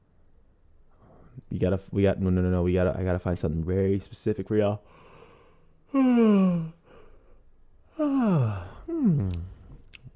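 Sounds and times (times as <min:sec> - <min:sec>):
speech: 0:01.5 - 0:05.0, 0:05.9 - 0:06.8, 0:08.0 - 0:09.5
person yawning: 0:05.9 - 0:07.1, 0:07.9 - 0:09.8.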